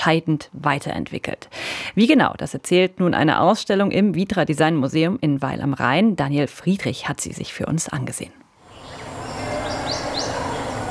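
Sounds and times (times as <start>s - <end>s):
speech: 0.0s - 8.4s
birds chirping: 8.6s - 10.9s.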